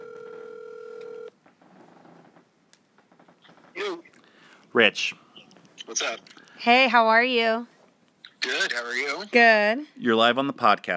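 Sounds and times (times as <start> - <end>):
piercing electronic telephone keypad dialing tone: 0.0 - 1.3
faint noise: 1.3 - 10.9
speech: 4.7 - 5.2, 5.9 - 7.7, 8.4 - 10.9.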